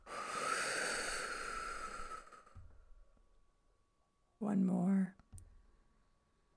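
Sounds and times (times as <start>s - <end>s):
deep exhale during a breathing exercise: 0.0s - 2.7s
speech: 4.4s - 5.1s.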